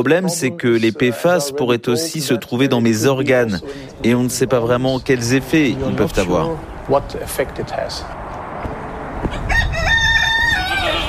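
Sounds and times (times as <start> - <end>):
speech: 0.0 - 8.2
outdoor noise: 0.0 - 11.0
rooster crowing in a garden: 9.3 - 11.0.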